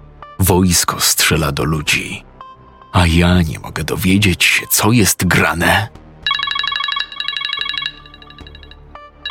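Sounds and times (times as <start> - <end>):
speech: 0.5 - 2.3, 2.9 - 6.0
telephone ringing with an electronic trill: 6.2 - 9.2.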